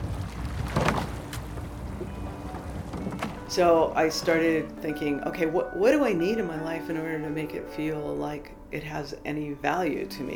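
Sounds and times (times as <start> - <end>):
wind: 0.0 - 3.5
oar stroke splashing from a rowing boat: 0.0 - 7.8
water swishing past a rowing boat: 0.0 - 10.1
speech: 3.5 - 10.3.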